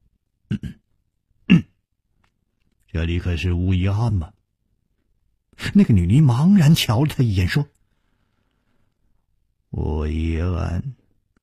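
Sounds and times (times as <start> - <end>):
dry throat-clearing coughs: 0.5 - 0.8, 1.4 - 1.8
speech: 3.0 - 4.4, 5.6 - 7.8, 9.8 - 11.0.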